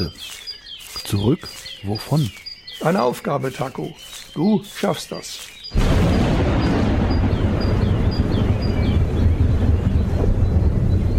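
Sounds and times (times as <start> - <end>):
speech: 0.0 - 0.4, 1.0 - 5.8
roaring wind-like wash: 5.7 - 11.1
thunder echoing across a bay: 5.7 - 11.1.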